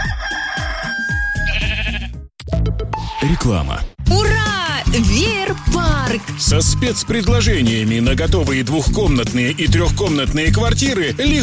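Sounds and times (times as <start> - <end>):
rooster crowing: 0.0 - 1.7
sheep bleating: 1.3 - 2.2
speech: 3.2 - 4.3, 4.9 - 11.4
thumping musical beat: 4.1 - 11.4.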